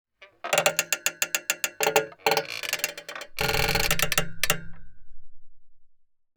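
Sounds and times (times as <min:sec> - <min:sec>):
metallic swing creaking under stress and pressure: 0:00.2 - 0:05.2.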